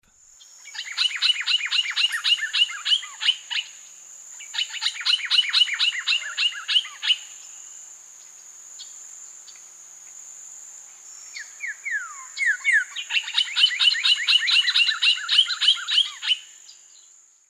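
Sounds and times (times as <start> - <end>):
Saltator coerulescens alarm song: 0.4 - 7.8, 11.2 - 17.4.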